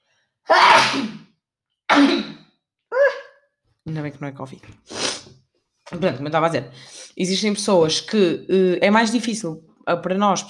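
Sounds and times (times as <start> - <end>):
sneeze: 0.5 - 2.5
speech: 3.9 - 10.4.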